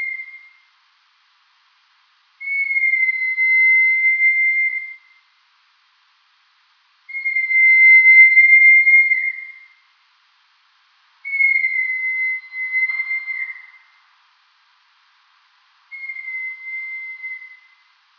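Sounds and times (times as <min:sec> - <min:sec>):
rat whistled calls: 0:00.0 - 0:00.7, 0:02.4 - 0:05.2, 0:07.1 - 0:09.8, 0:11.2 - 0:14.0, 0:15.9 - 0:17.9.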